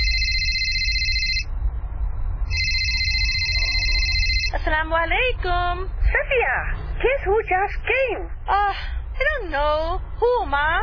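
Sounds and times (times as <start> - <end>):
phone ringing with an electronic trill: 0.0 - 1.5, 2.5 - 4.6
low rumble: 0.0 - 10.8
speech: 4.7 - 10.8.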